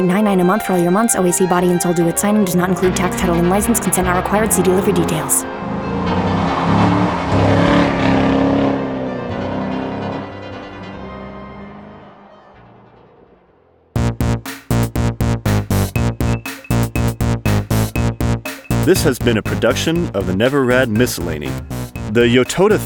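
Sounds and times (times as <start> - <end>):
steady rhythmic chugging pulse: 0.0 - 6.0, 14.0 - 22.8
speech: 0.0 - 6.2, 18.9 - 22.8
car engine revving and driving past: 4.1 - 14.0.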